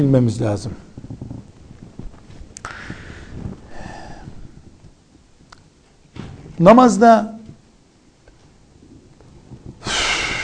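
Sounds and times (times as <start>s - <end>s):
speech: 0.0s - 0.9s, 6.6s - 7.4s
person making a sharp puffing exhale: 2.6s - 4.5s.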